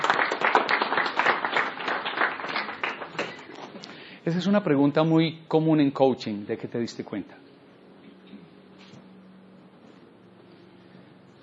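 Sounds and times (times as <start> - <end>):
audience applause for a fellow speaker: 0.0 - 3.6
speech: 4.2 - 7.4.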